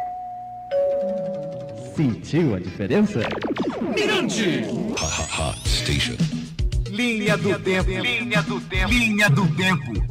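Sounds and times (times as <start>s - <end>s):
two-note ding-dong doorbell chime: 0.0s - 1.8s
speech: 2.0s - 10.0s.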